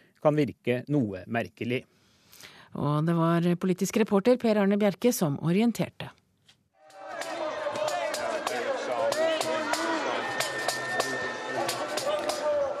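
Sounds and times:
speech: 0.2 - 6.2
crowd of demonstrators shouting at police at an outdoor protest: 6.8 - 12.7.

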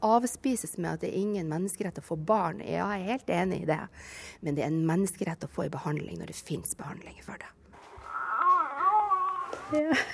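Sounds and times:
speech: 0.0 - 7.6, 9.7 - 10.1
baby fussing and whimpering through a baby monitor: 8.0 - 9.8.

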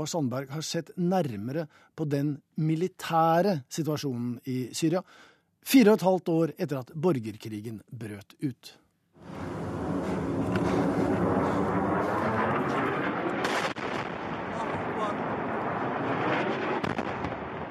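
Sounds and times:
speech: 0.0 - 9.5
barrel bomb dropped from a helicopter in Syria falling through the air: 9.2 - 17.6
sharp cracks: 10.4 - 17.6.

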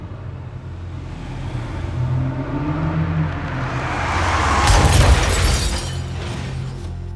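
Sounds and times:
speeding car engine roaring: 0.0 - 7.0
car crash impact with shattering: 4.0 - 7.1.

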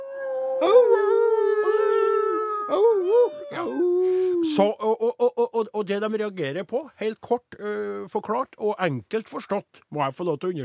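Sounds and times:
voice imitating a wolf howling at the moon: 0.0 - 5.6
speech: 4.6 - 4.9, 5.6 - 10.6.

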